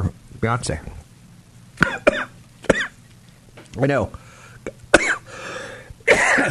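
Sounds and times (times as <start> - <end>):
speech: 0.4 - 1.0, 3.8 - 4.2
harsh coughs: 1.8 - 3.0, 4.9 - 5.3, 6.1 - 6.4.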